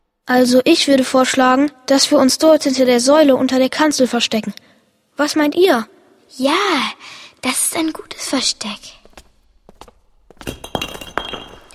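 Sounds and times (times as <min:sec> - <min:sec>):
speech: 0:00.3 - 0:09.0, 0:10.4 - 0:10.9
flashlight dropped on a hard floor, bouncing and rolling: 0:10.3 - 0:11.7.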